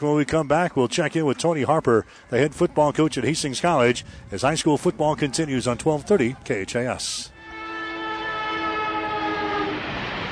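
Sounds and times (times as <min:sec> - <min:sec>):
speech: 0:00.0 - 0:07.4
rumble of rolling railcars: 0:00.0 - 0:10.2
loud train horn sounding a long steady chord: 0:07.3 - 0:10.2.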